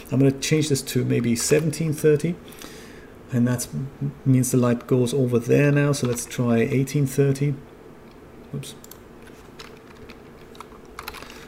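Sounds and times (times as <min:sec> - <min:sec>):
speech: 0:00.1 - 0:07.7, 0:08.5 - 0:08.9
keyboard shortcuts tapped on a computer keyboard: 0:09.6 - 0:11.3.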